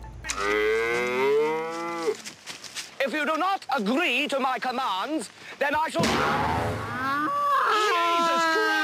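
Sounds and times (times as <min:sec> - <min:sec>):
cow mooing: 0:00.3 - 0:02.2
speech: 0:03.1 - 0:08.7.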